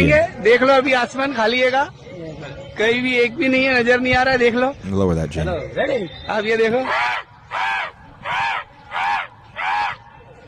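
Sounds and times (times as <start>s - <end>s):
speech: 0.0s - 8.7s
crows cawing: 6.8s - 10.0s.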